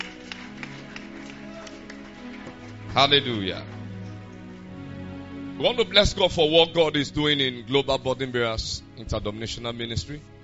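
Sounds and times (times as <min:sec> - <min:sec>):
audience clapping in rhythm: 0:00.0 - 0:04.5
low musical drone: 0:00.0 - 0:10.4
speech: 0:03.0 - 0:03.7, 0:05.6 - 0:10.3.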